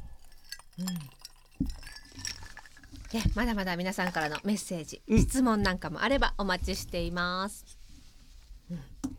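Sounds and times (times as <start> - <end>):
glasses clinking in a toast: 0.1 - 3.4
speech: 3.1 - 7.7, 8.7 - 8.9.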